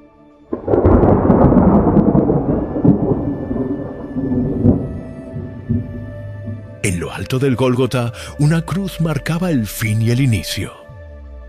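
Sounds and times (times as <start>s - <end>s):
loud deep thunder rumbling with faint crackles: 0.5s - 9.4s
speech: 7.2s - 10.8s.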